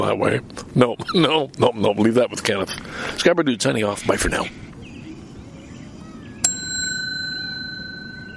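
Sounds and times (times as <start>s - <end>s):
speech: 0.0s - 4.6s
bright bicycle bell ding: 6.4s - 8.3s.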